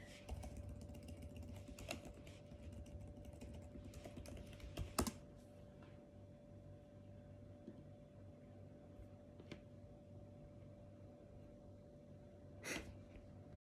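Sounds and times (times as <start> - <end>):
constant low hum: 0.0 - 13.6
typing on a computer keyboard: 0.3 - 5.2.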